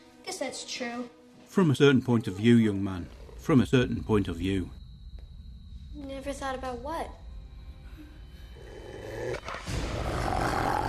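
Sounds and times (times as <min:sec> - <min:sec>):
speech: 0:00.5 - 0:04.8, 0:06.0 - 0:07.2
big cat growling and roaring: 0:08.6 - 0:10.8.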